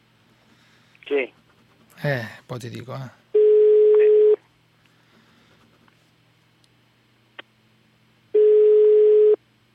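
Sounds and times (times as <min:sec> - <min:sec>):
speech: 0:01.1 - 0:01.4, 0:02.0 - 0:03.2
telephone ringback tone while placing a call: 0:03.4 - 0:04.4, 0:08.4 - 0:09.4.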